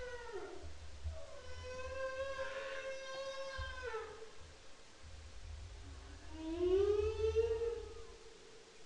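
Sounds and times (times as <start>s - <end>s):
humpback whale song with long harmonic moans in the Bering Strait: 1.2s - 4.2s, 6.2s - 8.4s.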